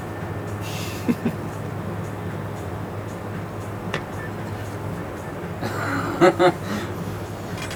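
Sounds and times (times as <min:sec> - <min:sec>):
construction machine, possibly a concrete mixer, rumbling: 0:00.0 - 0:07.7
voice-like chuckles: 0:00.6 - 0:01.7, 0:05.6 - 0:07.2.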